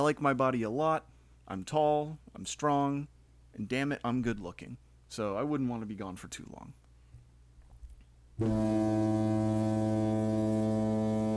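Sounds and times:
speech: 0.0 - 6.8, 8.4 - 9.3
loud deep boat foghorn blast: 8.4 - 11.3.

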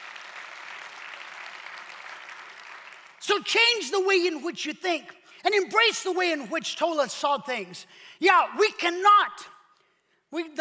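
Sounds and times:
audience clapping: 0.0 - 3.4
speech: 3.2 - 9.6, 10.3 - 10.5.

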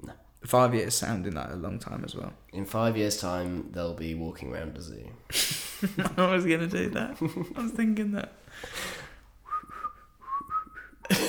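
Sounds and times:
speech: 0.1 - 9.0
laughter: 5.3 - 9.0, 11.1 - 11.2
person's failed attempt at breathy whistling: 8.5 - 11.1.

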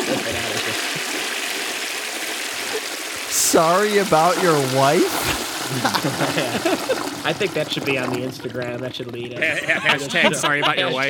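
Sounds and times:
laughter: 0.0 - 1.0, 3.7 - 11.0
toilet flushing with steady rush of water: 0.0 - 8.8
speech: 3.5 - 11.0.

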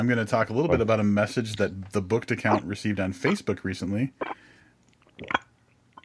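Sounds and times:
speech: 0.0 - 4.5, 5.2 - 5.4
person gulping sangria from a bottle: 4.2 - 6.0.

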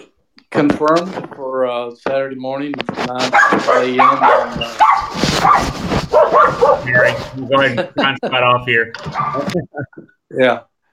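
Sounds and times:
speech: 0.5 - 10.7
dog barking and yelping: 3.3 - 7.4, 9.0 - 9.6
laughter: 6.8 - 10.2.

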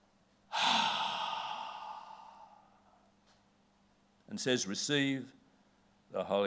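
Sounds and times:
person imitating a long breath blown out: 0.5 - 3.0
speech: 4.4 - 5.4, 6.1 - 6.4.

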